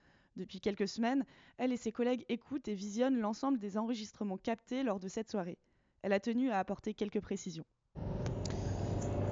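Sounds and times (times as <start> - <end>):
speech: 0.4 - 8.1
car interior road and engine drone while driving: 8.0 - 9.3.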